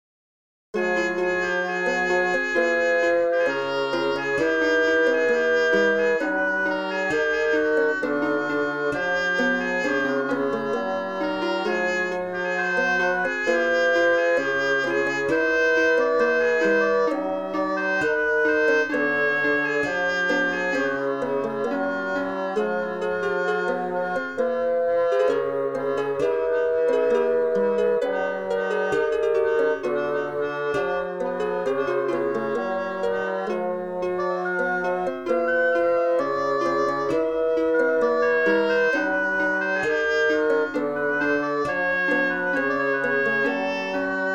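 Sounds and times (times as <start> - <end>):
baroque ensemble playing: 0.8 - 44.3.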